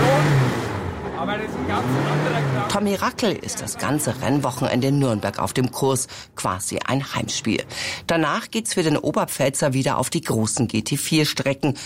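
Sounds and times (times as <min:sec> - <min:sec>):
vintage touring race car engine started and revved: 0:00.0 - 0:05.0
speech: 0:01.4 - 0:11.8.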